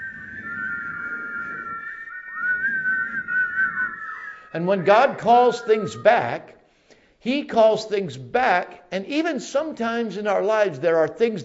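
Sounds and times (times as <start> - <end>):
many people whistling together in a small building: 0.0 - 6.3
speech: 4.5 - 6.6, 7.2 - 11.4.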